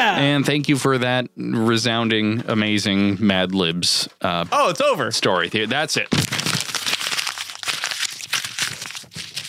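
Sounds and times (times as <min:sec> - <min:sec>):
speech: 0:00.1 - 0:06.4
paper being crumpled and thrown into the garbage: 0:06.0 - 0:09.4.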